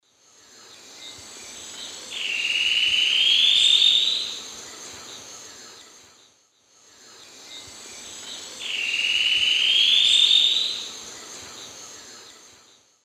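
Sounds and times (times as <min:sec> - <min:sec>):
Deconychura stictolaema singing in the Eastern Lowlands of South America: 0:00.2 - 0:13.0.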